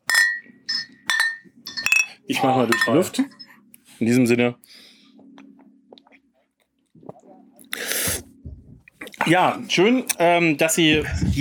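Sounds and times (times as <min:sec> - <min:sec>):
glasses clinking together in a toast: 0:00.0 - 0:03.5
speech: 0:02.3 - 0:03.4, 0:04.0 - 0:04.9, 0:09.3 - 0:11.3.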